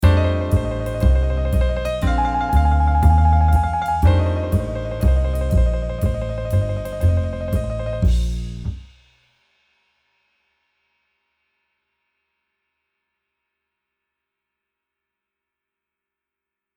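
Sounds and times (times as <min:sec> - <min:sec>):
tremolo: 0:00.0 - 0:08.8.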